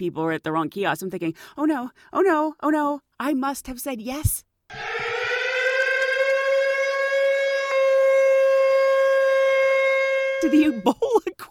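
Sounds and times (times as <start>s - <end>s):
speech: 0.0s - 5.1s, 10.4s - 11.4s
loud alarm siren wailing: 4.7s - 11.0s.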